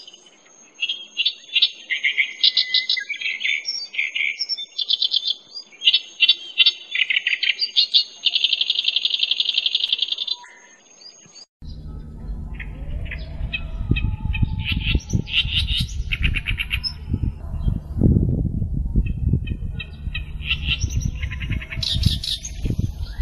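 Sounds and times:
clamorous reed warbler song with grating chatters and buzzy rattle: 0.0 - 23.2
low rumbling background noise: 11.6 - 23.2.

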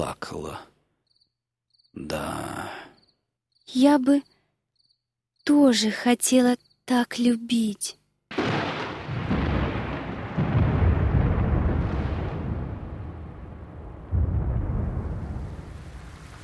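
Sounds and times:
speech: 0.0 - 0.7, 2.0 - 2.9, 3.7 - 4.3, 5.5 - 8.4
deep rolling thunder: 8.3 - 16.4
heavy downpour during a thunderstorm: 8.3 - 16.4.

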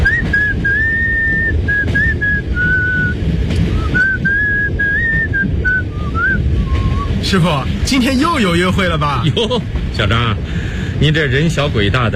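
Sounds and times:
train driver whistling happily in his cab: 0.0 - 7.1
constant low rumble: 0.0 - 12.1
speech: 7.3 - 12.1.

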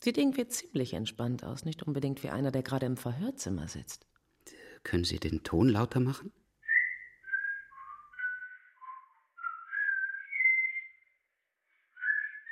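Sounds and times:
speech: 0.0 - 6.4
man whistling a tune in an interrogation room: 6.7 - 11.1, 12.0 - 12.4.

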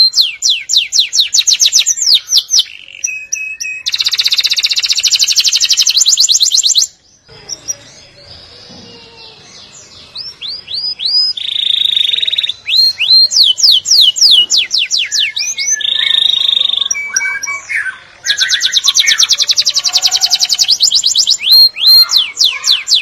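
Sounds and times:
Atlantic canary song with buzzy trill and swooped whistles: 0.0 - 22.9.

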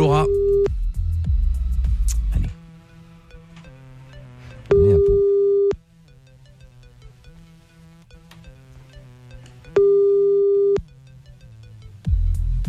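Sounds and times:
faint music: 0.0 - 12.6
ringback tone of an outgoing telephone call: 4.7 - 5.8, 9.8 - 10.8.

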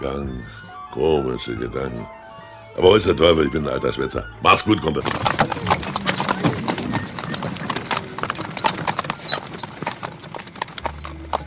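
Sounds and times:
speech: 0.0 - 2.2, 2.8 - 5.7
horse hooves clip-clopping pulling a horse-drawn wagon at night in Louisiana: 4.9 - 11.4.

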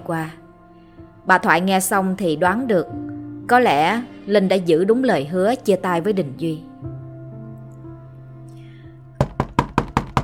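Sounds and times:
speech: 0.0 - 0.4, 1.2 - 6.7
knocking on a bedroom door: 9.2 - 10.2.

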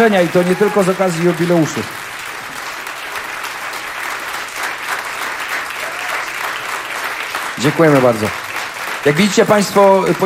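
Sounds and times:
speech: 0.0 - 2.0, 7.6 - 8.4, 9.0 - 10.2
audience applause after a violin performance at a jubilee concert: 0.0 - 10.2.

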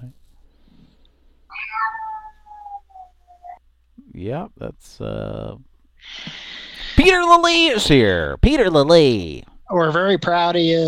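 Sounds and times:
cat meowing: 1.5 - 3.6
speech: 4.2 - 10.8.

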